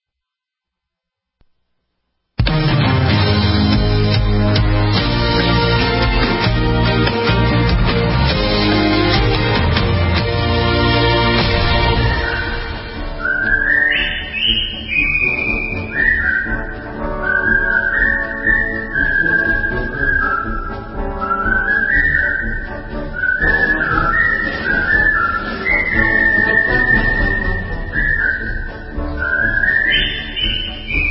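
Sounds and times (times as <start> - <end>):
full instrumental backing music: 2.4 - 31.0
clear loud whistled melody: 8.3 - 31.0.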